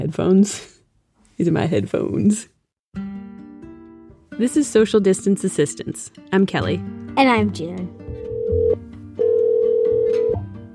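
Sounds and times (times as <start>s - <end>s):
speech: 0.0s - 0.8s, 1.4s - 3.2s, 4.4s - 8.0s
telephone ringback tone on an outgoing call: 8.2s - 10.4s.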